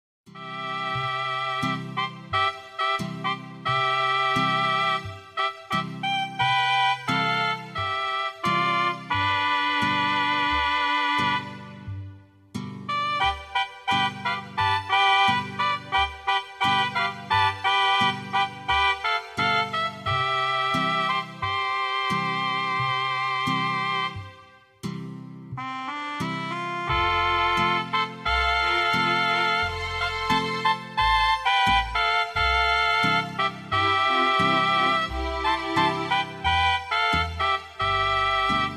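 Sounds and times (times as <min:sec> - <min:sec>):
mariachi music: 0:00.3 - 0:38.7.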